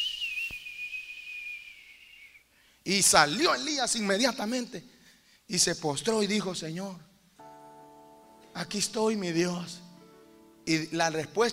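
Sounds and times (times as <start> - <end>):
high thin whistle: 0.0 - 2.5
speech: 2.9 - 4.9, 5.5 - 7.1, 8.6 - 9.8, 10.6 - 11.5.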